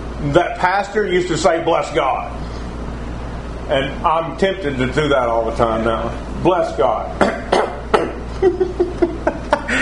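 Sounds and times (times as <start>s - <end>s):
speech: 0.2s - 2.5s, 3.7s - 7.4s, 8.4s - 9.1s
short throaty coughs: 7.2s - 8.3s
laughter: 8.3s - 9.8s.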